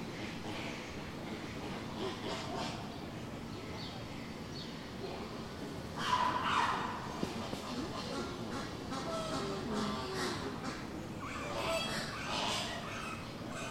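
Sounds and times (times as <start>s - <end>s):
low continuous rumble: 0.0s - 13.7s
dense steady murmur of many voices at a zoo: 0.6s - 13.7s.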